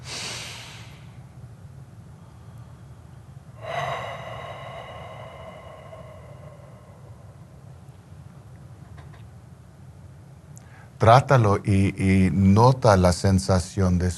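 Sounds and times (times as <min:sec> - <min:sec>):
person exhaling with a sighing tone in a breathing exercise: 0:00.0 - 0:01.2, 0:03.6 - 0:07.7
person inhaling in a breathing exercise: 0:00.0 - 0:01.2, 0:03.6 - 0:07.9, 0:10.6 - 0:11.0
speech: 0:11.0 - 0:14.1.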